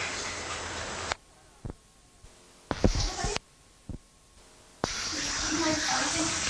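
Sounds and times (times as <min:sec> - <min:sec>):
tap water running for hand washing: 0:00.0 - 0:01.8, 0:02.7 - 0:04.0, 0:04.8 - 0:06.4.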